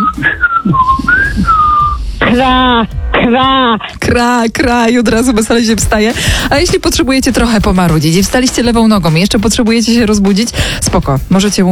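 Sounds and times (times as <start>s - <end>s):
caller whistling a bird-like call imitating a rooster's crow: 0.0s - 2.0s
speech: 0.2s - 1.1s, 2.3s - 11.7s.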